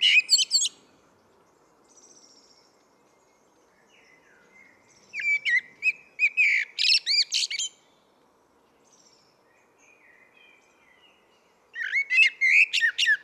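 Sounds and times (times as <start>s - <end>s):
common blackbird singing fluting warbled phrases with twitters: 0.0s - 0.8s, 3.8s - 7.8s, 9.9s - 13.2s.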